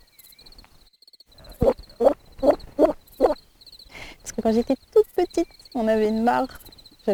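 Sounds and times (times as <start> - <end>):
woman imitating a frog with short throaty croaks: 1.5 - 3.4
speech: 4.4 - 4.8, 5.8 - 7.1.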